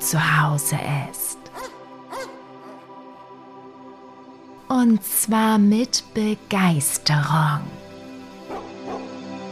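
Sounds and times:
speech: 0:00.1 - 0:01.3, 0:04.7 - 0:07.8
several small and large dogs and puppies barking and yipping while running over mossy hills: 0:01.5 - 0:02.9, 0:08.5 - 0:09.2.

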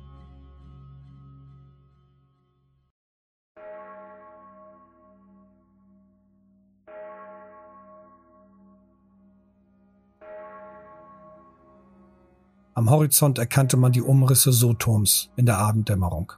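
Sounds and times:
large church bell tolling in the evening air: 0:03.6 - 0:16.3
speech: 0:12.8 - 0:16.3.

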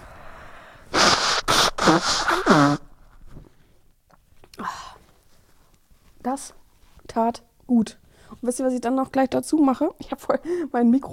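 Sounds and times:
person sniffling: 0:00.9 - 0:02.9
person blowing their nose: 0:00.9 - 0:03.0
speech: 0:01.9 - 0:02.8, 0:06.3 - 0:06.6, 0:07.2 - 0:11.1.

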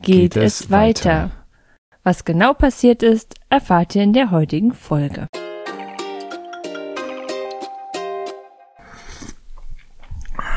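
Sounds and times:
speech: 0:00.0 - 0:01.4, 0:02.0 - 0:05.4
short burst of tonal music: 0:05.4 - 0:08.8
wet slurping at a drink: 0:08.8 - 0:10.3.

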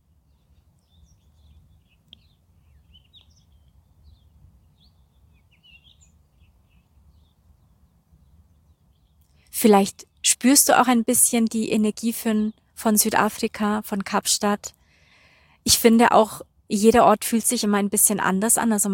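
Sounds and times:
birds singing and chirping outdoors in Cape Town South Africa: 0:00.2 - 0:14.4
speech: 0:09.6 - 0:14.8, 0:15.6 - 0:18.9.

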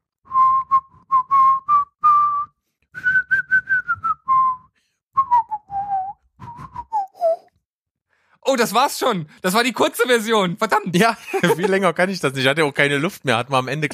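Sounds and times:
person whistling a short wavering melody: 0:00.3 - 0:07.5
speech: 0:08.5 - 0:13.9
laughter: 0:11.0 - 0:12.1, 0:13.6 - 0:13.9.

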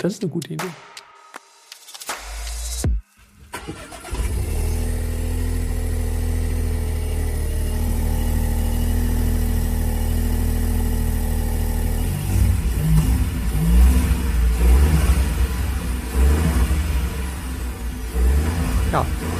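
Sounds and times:
speech: 0:00.0 - 0:01.0
small three-cylinder car engine revving in short bursts: 0:02.7 - 0:19.3
small three-cylinder car engine cranking in a manual-transmission test car: 0:03.4 - 0:10.8, 0:11.8 - 0:19.3.

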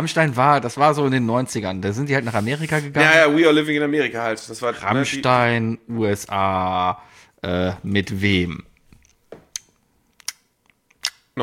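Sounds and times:
speech: 0:00.0 - 0:08.7
wet lip-smacking while chewing: 0:09.5 - 0:11.3.

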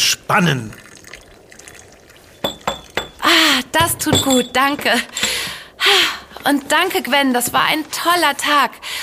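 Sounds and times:
speech: 0:00.3 - 0:00.8, 0:03.7 - 0:05.2, 0:05.9 - 0:09.0
hot cocoa trickling into cups: 0:00.4 - 0:08.3
cups clinking: 0:00.8 - 0:07.6.

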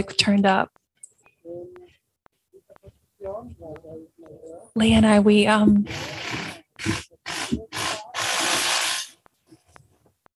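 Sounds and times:
speech: 0:00.0 - 0:00.8, 0:03.2 - 0:08.0
power drill running: 0:05.9 - 0:09.2.

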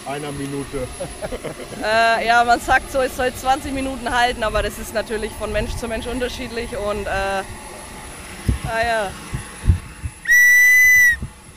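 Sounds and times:
speech: 0:00.0 - 0:07.6, 0:08.7 - 0:09.3
laughter: 0:00.7 - 0:02.2
soft low thumps: 0:01.3 - 0:11.5
sharp piercing whistle blast: 0:10.2 - 0:11.3.

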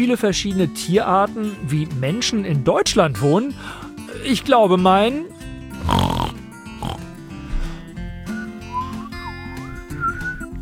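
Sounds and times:
speech: 0:00.0 - 0:05.3
pig squealing and snorting: 0:05.8 - 0:07.1
wavering sliding whistles sound effect: 0:08.3 - 0:10.5.

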